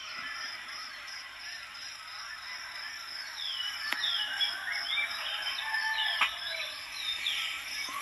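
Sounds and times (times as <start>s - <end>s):
morning birds calling and chirping in a garden: 0.0s - 8.0s
rooster in a garden: 4.0s - 6.8s.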